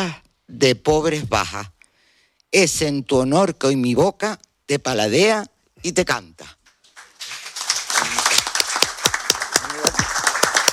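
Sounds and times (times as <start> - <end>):
speech: 0.0 - 1.8, 2.5 - 6.6
room full of people clapping: 6.6 - 10.7.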